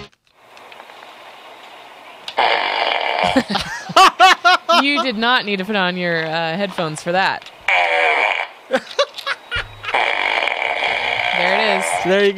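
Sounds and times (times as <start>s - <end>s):
buzzy electronic fart sound from a remote fart machine novelty gag gift: 2.3s - 3.6s, 7.7s - 8.6s, 9.5s - 12.2s
laughter: 3.2s - 5.5s, 8.7s - 10.0s
speech: 3.3s - 3.7s, 4.8s - 7.5s, 11.7s - 12.3s.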